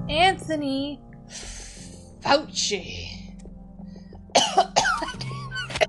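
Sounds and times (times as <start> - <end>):
speech: 0.1 - 1.6, 2.2 - 3.2
harsh raspy wet coughing: 4.3 - 5.8.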